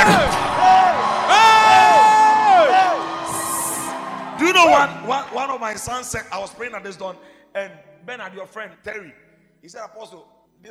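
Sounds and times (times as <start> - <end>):
church congregation shouting and whooping: 0.0 - 6.7
speech: 4.8 - 10.6.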